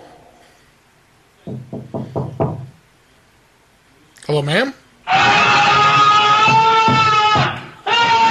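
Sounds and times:
knocking on a wall: 0:01.4 - 0:02.8, 0:06.3 - 0:08.2
speech: 0:04.3 - 0:05.4.

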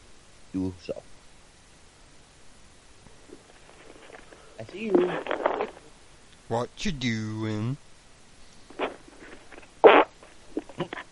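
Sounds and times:
speech: 0:00.5 - 0:01.1, 0:04.6 - 0:05.8, 0:06.5 - 0:07.9
fart over a phone line: 0:08.8 - 0:11.0.

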